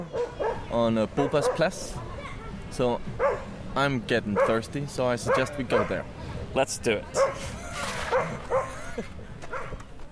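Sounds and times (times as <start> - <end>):
dog barking and yipping: 0.0 - 1.8, 3.2 - 3.5, 4.4 - 4.6, 5.2 - 6.0, 7.2 - 8.8
speech: 0.0 - 2.1, 2.7 - 9.1
laughter: 7.4 - 9.5.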